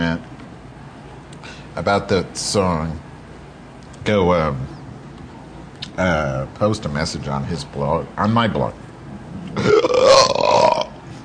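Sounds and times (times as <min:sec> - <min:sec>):
speech: 0:01.8 - 0:03.1, 0:04.0 - 0:04.8, 0:06.0 - 0:08.8, 0:09.5 - 0:10.0
long rough belch: 0:09.6 - 0:11.0.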